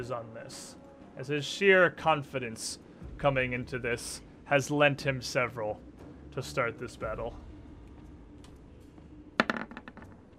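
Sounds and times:
speech: 0:00.0 - 0:07.4
dice clattering onto a hard table: 0:09.4 - 0:10.3.

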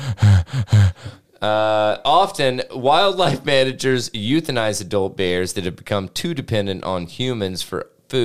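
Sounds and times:
person panting in quick voiced rasping breaths: 0:00.0 - 0:01.4
speech: 0:00.6 - 0:08.2.

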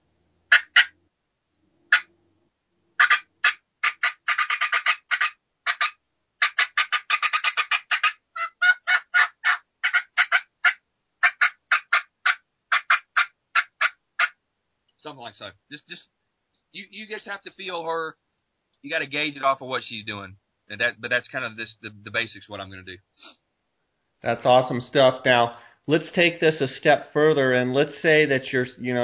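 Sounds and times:
hen turkey call fast cutting and yelping: 0:00.5 - 0:00.9, 0:03.0 - 0:14.4
speech: 0:15.1 - 0:18.2, 0:18.8 - 0:23.4, 0:24.2 - 0:29.0.

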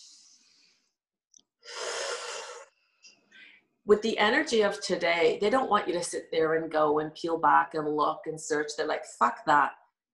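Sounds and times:
deep breath in: 0:01.6 - 0:02.7, 0:03.3 - 0:03.7
faint breathy sounds: 0:01.6 - 0:03.8
speech: 0:03.9 - 0:10.1.

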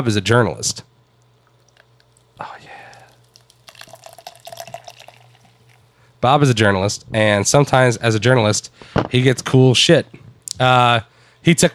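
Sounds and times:
speech: 0:00.0 - 0:00.9, 0:06.2 - 0:11.7
fizzy drink poured from a can: 0:01.1 - 0:05.9.

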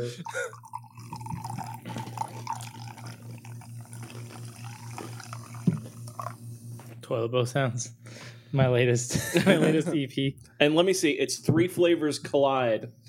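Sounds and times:
speech: 0:00.0 - 0:00.8, 0:07.1 - 0:13.0
light purple soda pouring into a cup: 0:00.0 - 0:06.8
low hum: 0:00.0 - 0:08.5
soda dripping: 0:00.2 - 0:06.8
laughter: 0:09.1 - 0:10.2.

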